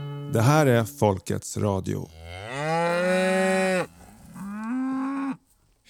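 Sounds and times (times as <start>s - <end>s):
speech: 0.3s - 2.2s
cow mooing: 2.0s - 5.5s.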